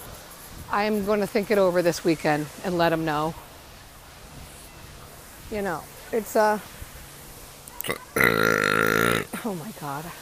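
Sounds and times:
speech: 0:00.7 - 0:03.5, 0:05.5 - 0:06.8, 0:07.8 - 0:08.4, 0:09.4 - 0:10.2
loud drawn-out burp: 0:07.8 - 0:09.4
throaty gulp: 0:07.8 - 0:09.4.

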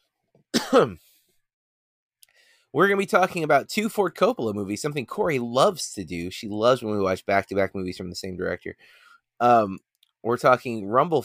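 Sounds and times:
throat clearing: 0:00.6 - 0:01.1
speech: 0:00.7 - 0:01.0, 0:02.7 - 0:11.2.

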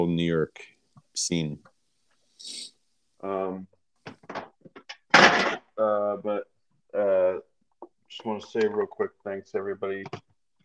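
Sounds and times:
speech: 0:00.0 - 0:01.7, 0:02.4 - 0:03.7, 0:05.8 - 0:07.5, 0:08.1 - 0:10.3
cans being thrown and slammed: 0:04.1 - 0:05.7.

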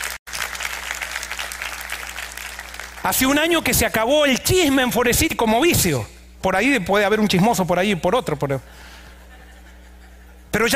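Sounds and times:
audience applauding: 0:00.0 - 0:03.1
speech: 0:03.0 - 0:08.9, 0:10.6 - 0:10.7
laughter: 0:09.0 - 0:10.5.

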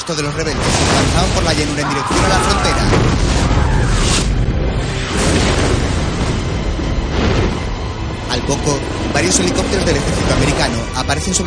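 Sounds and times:
speech: 0:00.1 - 0:04.2, 0:08.4 - 0:11.4
fighter jet missiles exploding on troops on a plain: 0:00.2 - 0:08.5.

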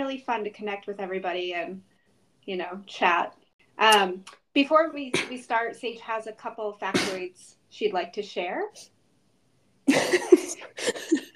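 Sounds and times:
speech: 0:00.1 - 0:08.9, 0:09.9 - 0:11.3
person coughing: 0:07.0 - 0:07.2, 0:09.9 - 0:11.3.

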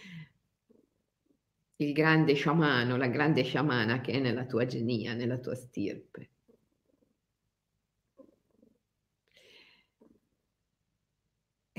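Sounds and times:
cat purring: 0:00.0 - 0:01.5, 0:06.0 - 0:10.8
speech: 0:01.8 - 0:06.4.

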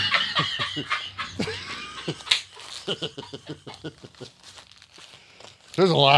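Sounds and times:
laughter: 0:00.0 - 0:04.6
speech: 0:00.4 - 0:01.0, 0:05.8 - 0:06.1
crumpled tax papers crinkling and rustling: 0:02.1 - 0:06.1.

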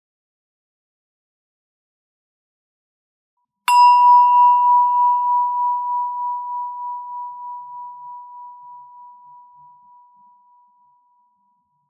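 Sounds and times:
meditation bell ringing: 0:03.7 - 0:10.8.

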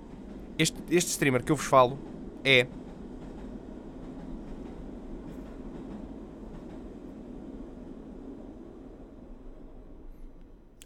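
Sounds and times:
train rumbling past: 0:00.0 - 0:10.0
speech: 0:00.6 - 0:02.8.

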